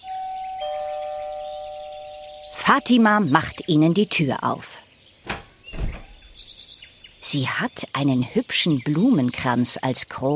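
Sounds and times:
two-tone ding-dong doorbell ringing at a house: 0:00.0 - 0:03.2
speech: 0:02.7 - 0:04.8, 0:07.3 - 0:10.3.

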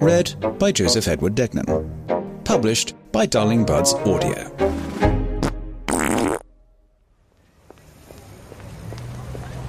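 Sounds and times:
speech: 0:00.0 - 0:01.9, 0:02.5 - 0:05.0
loud fart: 0:05.4 - 0:06.5.

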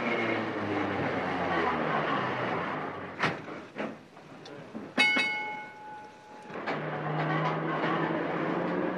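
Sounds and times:
tram rolling in with rumbling clatter: 0:00.0 - 0:08.9
sharp clunks of a tram: 0:04.9 - 0:07.6
single bright tram bell ding: 0:05.0 - 0:06.5.

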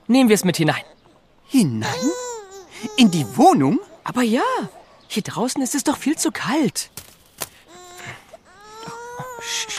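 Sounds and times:
speech: 0:00.1 - 0:02.2, 0:02.8 - 0:07.1, 0:09.4 - 0:09.7
infant crying after being woken outside a house in the cold: 0:01.8 - 0:04.9, 0:07.7 - 0:09.7.

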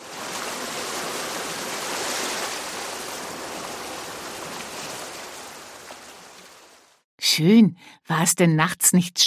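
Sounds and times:
ocean waves washing onto a beach: 0:00.0 - 0:07.0
speech: 0:07.4 - 0:09.2.

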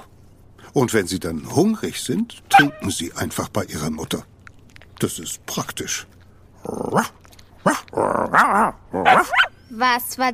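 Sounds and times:
speech: 0:00.8 - 0:04.3, 0:05.0 - 0:10.3
person imitating a dog barking at puppies: 0:02.5 - 0:02.8, 0:06.7 - 0:09.5.

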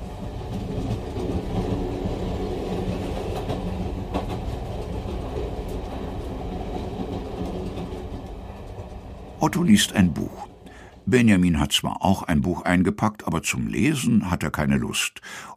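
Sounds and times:
train wheels rolling on rails beneath a passenger compartment: 0:00.0 - 0:11.3
speech: 0:09.4 - 0:10.5, 0:11.1 - 0:15.5.

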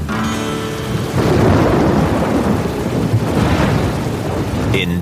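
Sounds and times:
heavy rain over a national park: 0:00.2 - 0:04.9
deep rolling thunder over a national park: 0:00.9 - 0:04.8.

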